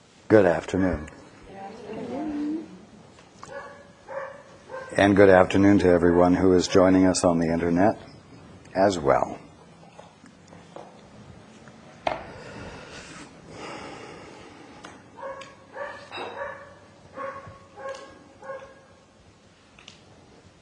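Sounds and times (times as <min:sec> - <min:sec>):
faint noise: 0:00.0 - 0:20.6
speech: 0:00.3 - 0:01.2, 0:05.0 - 0:08.1, 0:08.8 - 0:09.4
neighbor's dog barking: 0:03.5 - 0:05.0, 0:15.2 - 0:19.0.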